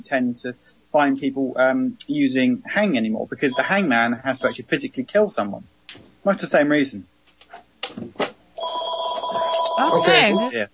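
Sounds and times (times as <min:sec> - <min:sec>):
speech: 0:00.0 - 0:07.1, 0:07.9 - 0:08.2, 0:09.8 - 0:10.7
telephone ringing with electronic tone: 0:03.5 - 0:04.6, 0:08.6 - 0:10.7.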